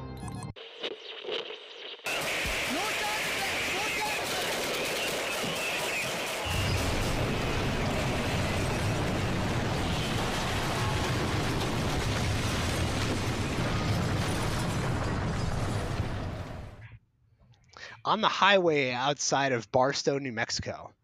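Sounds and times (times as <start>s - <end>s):
explosions from an attack on a convoy on a highway outside Barstow, New Mexico: 2.0s - 16.8s
gunfire from an attack on a convoy on a highway outside Barstow, New Mexico: 2.1s - 16.8s
heavy low rumble: 6.5s - 16.8s
speech: 18.1s - 20.9s.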